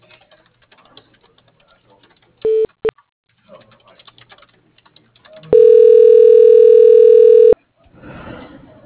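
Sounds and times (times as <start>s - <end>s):
short telephone beeps of a call transferred to voicemail: 5.6s - 7.6s.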